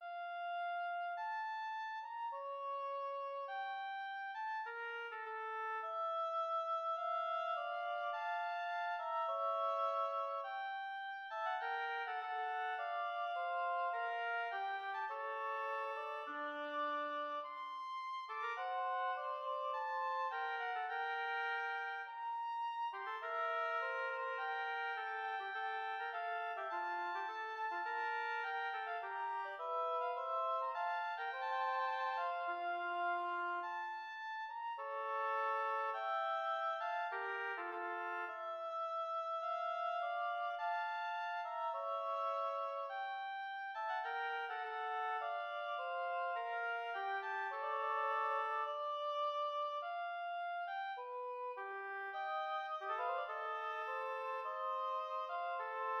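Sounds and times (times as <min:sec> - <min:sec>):
slow oboe duet: 0:00.0 - 0:55.9.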